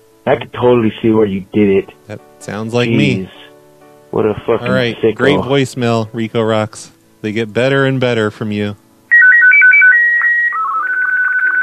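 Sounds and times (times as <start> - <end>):
speech: 0.3 - 3.4, 4.1 - 8.8
phone ringtone playing electronic notes: 9.1 - 11.6.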